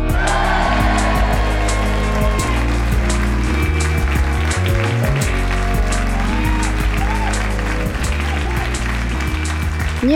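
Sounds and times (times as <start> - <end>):
crowd applauding after a song: 0.1 - 10.1.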